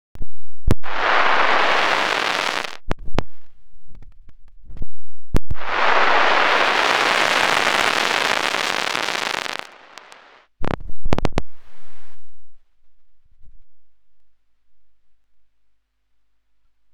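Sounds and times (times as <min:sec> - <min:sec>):
radio noise: 0:00.8 - 0:02.8, 0:05.6 - 0:10.4.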